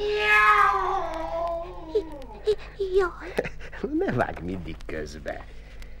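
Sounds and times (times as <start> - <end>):
cat meowing: 0.0 - 1.5
speech: 2.5 - 5.9.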